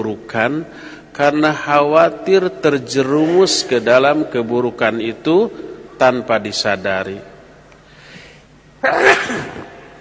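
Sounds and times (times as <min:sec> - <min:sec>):
speech: 0:00.0 - 0:07.3, 0:08.8 - 0:09.7
sneeze: 0:08.8 - 0:09.8.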